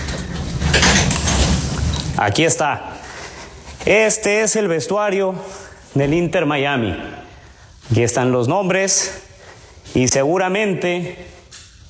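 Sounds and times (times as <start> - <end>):
door swinging open with scraping noise: 0.0 - 2.2
speech: 2.2 - 2.9, 3.8 - 7.2, 7.9 - 11.4.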